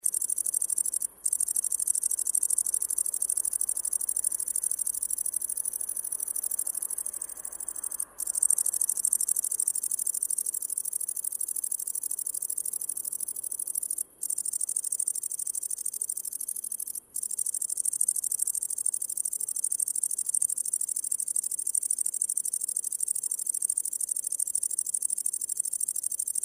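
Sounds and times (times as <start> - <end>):
great green bush cricket chirping: 0.0 - 26.4.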